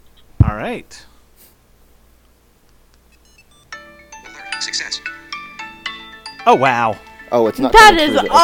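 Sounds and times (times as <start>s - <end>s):
speech: 0.6s - 1.1s, 4.6s - 5.1s, 6.4s - 8.4s
faint electronic chirps: 3.1s - 3.8s
smartphone ringing, triggered remotely by tracker: 3.2s - 6.6s.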